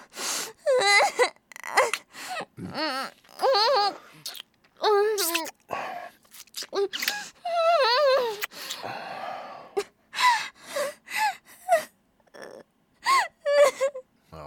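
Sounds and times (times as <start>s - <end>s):
person crying and whimpering: 0.7s - 4.1s, 6.7s - 8.5s, 9.8s - 14.1s.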